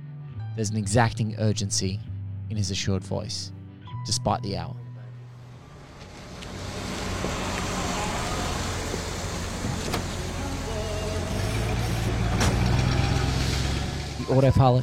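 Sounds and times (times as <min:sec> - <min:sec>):
speech: 0:00.6 - 0:04.8, 0:14.3 - 0:14.8
car engine and road rumble driving through city streets: 0:05.2 - 0:14.8.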